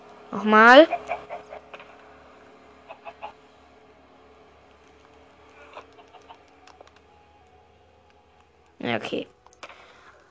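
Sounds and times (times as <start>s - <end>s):
low steady hum: 0.0s - 10.2s
speech: 0.3s - 1.2s, 8.9s - 9.4s
video game chicken from a chicken spawn clucking: 0.8s - 1.7s, 2.9s - 3.4s, 5.5s - 6.8s.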